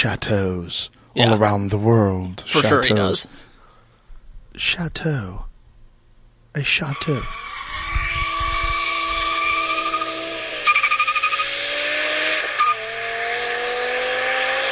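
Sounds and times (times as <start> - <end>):
speech: 0.0 - 3.5, 4.6 - 5.5, 6.6 - 7.4
high-pitched V10 engine accelerating hard with gear shifts: 7.7 - 14.7.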